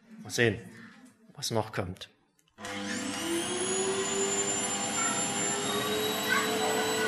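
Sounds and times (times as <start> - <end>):
speech: 0.3 - 0.8, 1.4 - 2.2
vacuum cleaner motor whine: 2.6 - 7.0.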